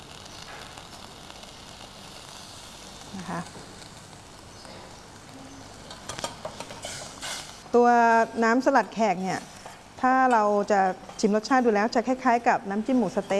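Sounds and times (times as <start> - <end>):
paste stir-frying in coconut cream: 0.0 - 13.3
speech: 3.2 - 3.8, 7.7 - 13.3.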